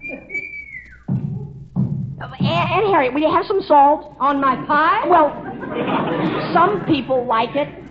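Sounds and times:
high thin whistle from the cellar: 0.0s - 1.4s
speech: 2.6s - 7.8s
laughter: 5.0s - 7.9s.

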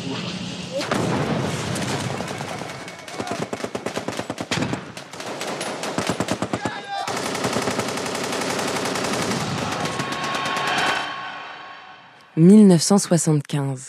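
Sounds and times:
artillery during the bombing of Vietnam: 0.1s - 11.1s
rumbling battle din near Hanoi: 0.7s - 3.6s, 9.1s - 12.1s
sharp gunshots: 0.7s - 11.4s
rapid machine-gun fire during the bombing of Vietnam near Hanoi: 0.8s - 11.1s
speech: 12.4s - 13.8s.

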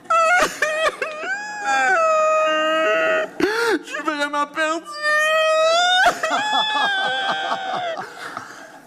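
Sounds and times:
voice imitating loud drawn-out wailing sobs: 0.0s - 3.4s, 4.8s - 8.0s
laughter: 5.8s - 8.8s.

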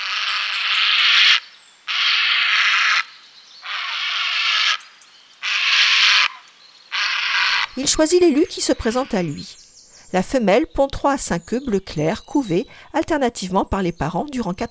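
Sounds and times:
heron on its nest giving rasping calls to females: 0.0s - 9.6s
speech: 7.8s - 14.6s.

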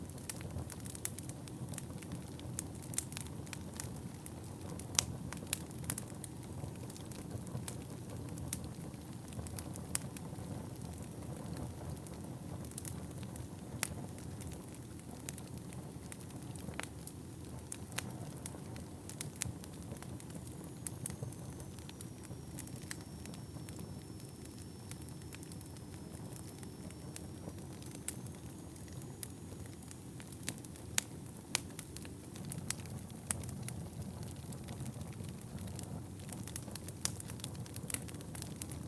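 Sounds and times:
fireplace fire crackling: 0.0s - 38.8s
low soft roar of burning fire: 0.0s - 38.8s
faint thin whine: 18.1s - 38.8s.

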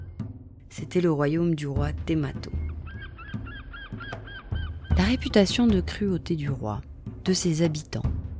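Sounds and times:
speech: 0.7s - 2.6s, 5.0s - 8.1s
seagulls calling: 2.6s - 5.6s.

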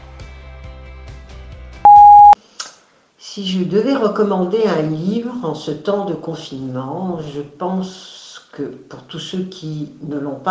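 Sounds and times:
answering machine style electronic beep tone: 1.9s - 2.4s
speech: 3.4s - 10.4s.

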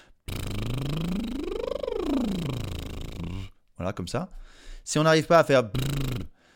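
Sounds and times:
voice lip trill siren sweep as a vocal warm-up exercise: 0.2s - 3.5s
speech: 3.8s - 6.3s.

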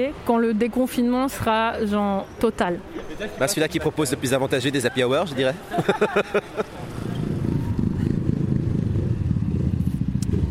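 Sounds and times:
speech: 0.0s - 7.0s
motorcycles idling and riding past outdoors: 2.8s - 10.5s
laughter: 2.9s - 3.6s, 4.8s - 7.1s
motorcycle engines revving outdoors: 5.7s - 10.5s.

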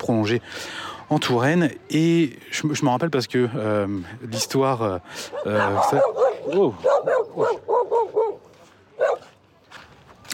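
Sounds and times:
speech: 0.0s - 8.4s
dog in Mauritius barking at a passer-by in front of a hotel: 5.3s - 8.4s, 9.0s - 9.3s.

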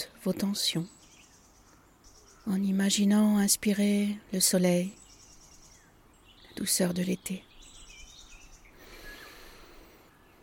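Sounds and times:
soft birdsong with high whistles and chirps: 0.0s - 10.4s
steady outdoor hiss: 0.0s - 10.4s
speech: 0.2s - 1.0s, 2.4s - 5.0s, 6.6s - 7.5s.

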